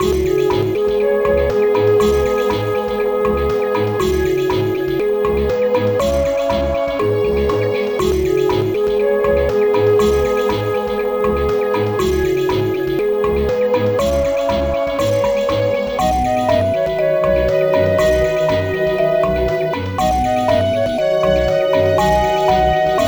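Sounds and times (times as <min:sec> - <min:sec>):
forest music: 0:00.0 - 0:23.0.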